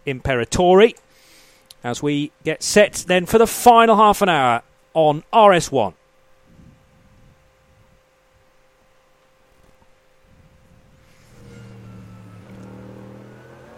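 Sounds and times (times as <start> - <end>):
speech: 0.0 - 1.0, 1.8 - 6.0
thunderous V8 race car engine revving: 11.1 - 13.7.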